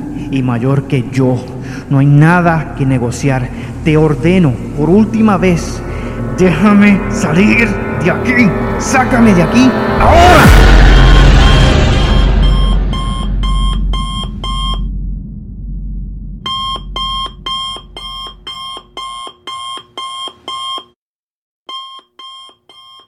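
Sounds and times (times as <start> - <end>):
heavy rumbling crash: 0.0 - 18.5
speech: 0.3 - 5.8, 6.4 - 10.6
wake-up alarm clock beeping electronically: 10.5 - 14.9, 16.5 - 20.9, 21.7 - 23.0.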